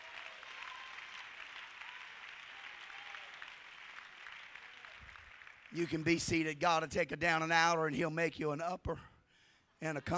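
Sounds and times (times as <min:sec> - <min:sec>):
audience clapping hands in worship: 0:00.0 - 0:06.9
speech: 0:05.7 - 0:09.1, 0:09.8 - 0:10.1.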